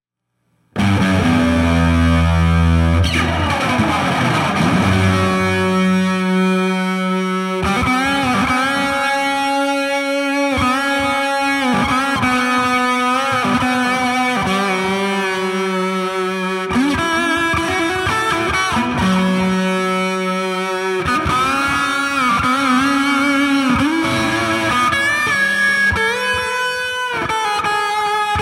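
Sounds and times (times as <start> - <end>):
guitar solo through Sunface fuzz pedal at 12 o'clock with gain at 50%: 0.8 - 28.4.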